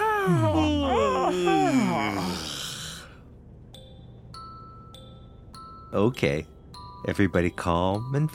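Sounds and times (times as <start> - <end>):
several people yawning: 0.0 - 3.2
speech: 0.2 - 2.6, 5.9 - 8.3.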